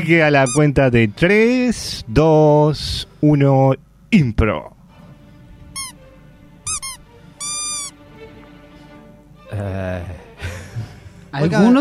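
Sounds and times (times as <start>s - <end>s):
speech: 0.0s - 4.8s, 9.5s - 10.2s, 11.3s - 11.7s
rubber duck toy squeaking: 0.4s - 0.7s, 5.8s - 6.0s, 6.7s - 8.0s
laughter: 10.2s - 11.2s.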